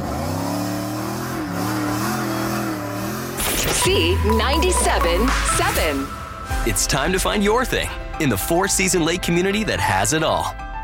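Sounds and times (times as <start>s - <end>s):
tires squealing in a peel-out: 0.0s - 3.4s
car engine revving: 0.0s - 6.7s
speech: 3.6s - 10.8s.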